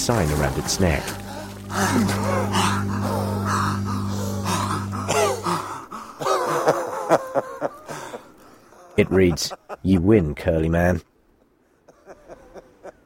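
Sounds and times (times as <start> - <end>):
speech: 0.0 - 3.2, 9.0 - 11.1
steady low hum: 0.0 - 8.7
two men gasping and panting after coming up out of a river: 1.1 - 9.0
laughter: 1.1 - 10.0, 11.9 - 13.0.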